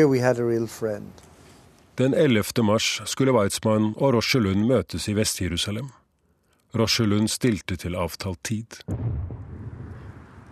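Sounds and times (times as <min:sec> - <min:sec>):
speech: 0:00.0 - 0:01.3, 0:02.0 - 0:06.0, 0:06.7 - 0:09.3
large car bomb exploding outside a headquarters building: 0:08.9 - 0:10.5.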